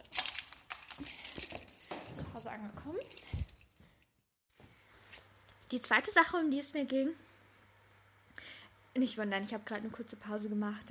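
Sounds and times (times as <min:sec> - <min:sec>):
keys jangling: 0:00.0 - 0:04.1
speech: 0:02.5 - 0:03.4, 0:05.7 - 0:07.3, 0:09.0 - 0:10.9.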